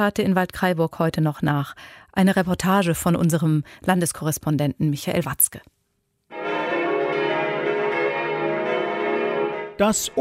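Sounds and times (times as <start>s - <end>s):
speech: 0.0s - 5.8s, 9.8s - 10.2s
several bronze church bells ringing for mass: 6.3s - 10.2s.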